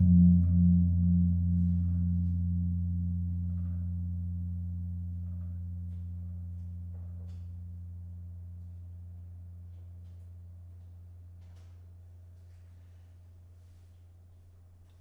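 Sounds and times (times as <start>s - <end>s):
kempul gong in gamelan: 0.0s - 9.6s.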